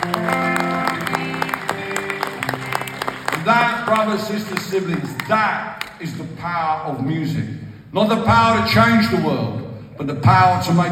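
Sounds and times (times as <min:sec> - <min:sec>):
audience clapping in a room: 0:00.0 - 0:06.1
speech: 0:03.9 - 0:10.9.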